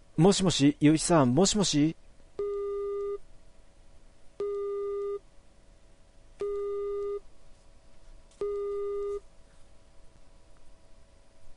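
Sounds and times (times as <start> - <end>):
speech: 0.2 - 2.0
telephone busy tone after a call disconnects: 2.4 - 3.2, 4.4 - 5.2, 6.4 - 7.2, 8.4 - 9.2.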